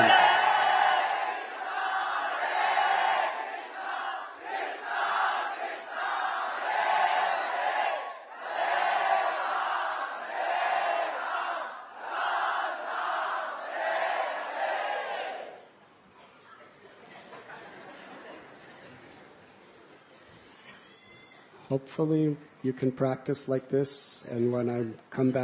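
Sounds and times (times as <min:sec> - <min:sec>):
large crowd chanting a devotional call loudly: 0:00.0 - 0:15.6
laughter: 0:16.5 - 0:19.4
speech: 0:21.7 - 0:25.4.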